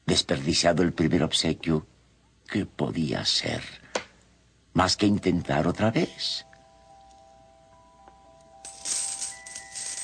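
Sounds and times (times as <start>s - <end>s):
speech: 0.2s - 1.9s, 2.5s - 3.8s, 4.8s - 6.5s
faint sustained musical tone: 4.8s - 10.0s
stream of coins pouring out: 8.6s - 10.0s.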